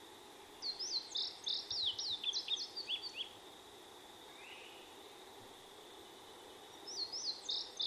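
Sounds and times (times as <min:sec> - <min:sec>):
indigo bunting singing high doubled chirps: 0:00.4 - 0:03.4, 0:06.0 - 0:07.8.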